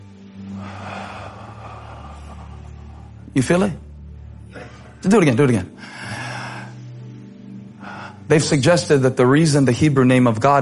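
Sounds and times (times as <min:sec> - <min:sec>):
deep breath drawn in: 0:00.3 - 0:03.3, 0:05.7 - 0:08.3
speech: 0:03.4 - 0:03.9, 0:05.0 - 0:06.0, 0:08.3 - 0:10.6.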